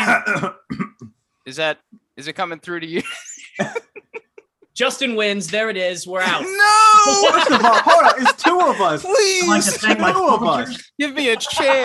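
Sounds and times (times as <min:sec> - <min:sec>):
person clearing throat: 0:00.0 - 0:01.1
speech: 0:01.5 - 0:03.8, 0:04.8 - 0:11.8
laughter: 0:03.0 - 0:04.6, 0:06.2 - 0:11.8.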